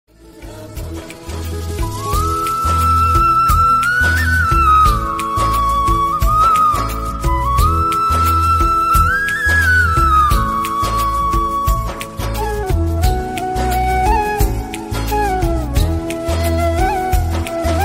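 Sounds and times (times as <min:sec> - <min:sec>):
flute version ringtone: 0:01.9 - 0:17.8.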